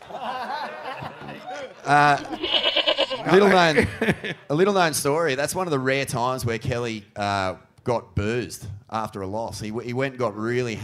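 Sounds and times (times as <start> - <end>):
laughter: 0.0 - 4.5
speech: 0.1 - 0.5, 1.6 - 2.6, 3.3 - 10.8
loud harsh angry goat bleat: 2.0 - 3.5.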